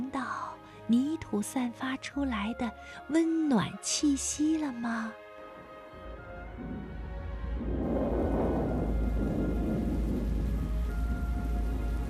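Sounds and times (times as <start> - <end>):
speech: 0.9 - 5.2
thunder rumbling: 5.9 - 12.0
heavy rain: 6.4 - 12.0.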